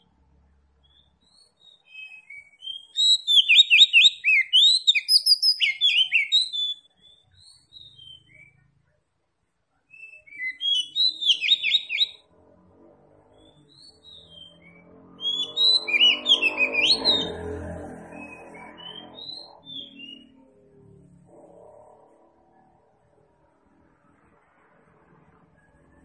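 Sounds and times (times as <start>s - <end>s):
Oriental magpie-robin singing vigorously: 0.8s - 8.6s, 9.9s - 12.2s, 13.3s - 20.4s.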